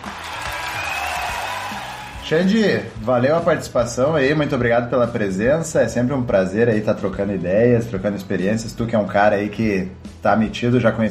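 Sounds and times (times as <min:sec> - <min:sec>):
faint whoop or cheer: 0:00.0 - 0:02.2
applause: 0:00.0 - 0:02.3
speech: 0:02.3 - 0:11.0.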